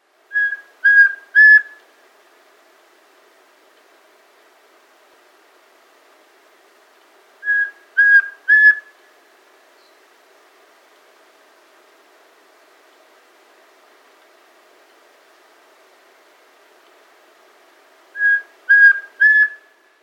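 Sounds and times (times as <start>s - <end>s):
Rusty-tinged Antpitta calling in South America: 0.3s - 1.8s, 7.4s - 10.0s, 18.2s - 19.9s.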